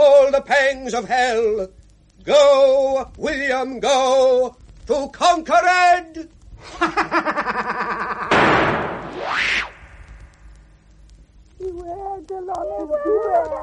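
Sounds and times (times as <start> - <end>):
speech: 0.4 - 8.1, 11.6 - 13.6
laughter: 6.6 - 8.3
rising and falling whoosh: 8.4 - 10.4
eerie ghostly howling: 11.7 - 13.6.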